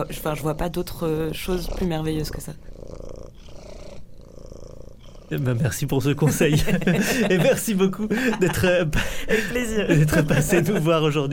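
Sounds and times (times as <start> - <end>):
speech: 0.0 - 3.0, 5.3 - 11.3
cat purring: 0.0 - 7.9
laughter: 6.2 - 11.3.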